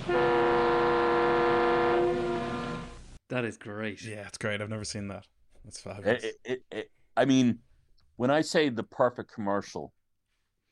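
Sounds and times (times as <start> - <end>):
loud brassy siren in a car commercial: 0.0 - 3.0
speech: 3.3 - 10.0.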